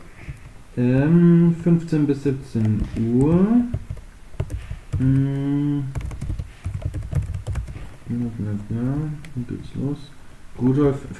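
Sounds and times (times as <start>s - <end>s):
steady hum: 0.0s - 11.1s
typing on a computer keyboard: 0.3s - 1.2s, 2.5s - 8.0s
speech: 0.8s - 3.8s, 5.0s - 6.0s, 8.1s - 11.1s.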